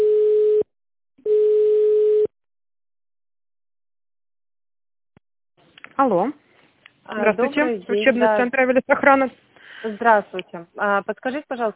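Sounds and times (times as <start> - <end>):
telephone call-progress tone on an office line while waiting for connection: 0.0 - 2.3
speech: 6.0 - 6.4, 7.1 - 11.7.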